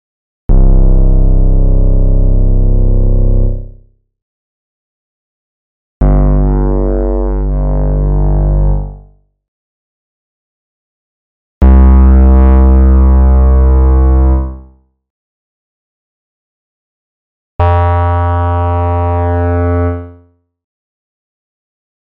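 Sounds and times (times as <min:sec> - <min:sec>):
hollow fuzz synth on Arturia Modular V3: 0:00.5 - 0:03.8, 0:06.0 - 0:09.1, 0:11.6 - 0:14.6, 0:17.6 - 0:20.2.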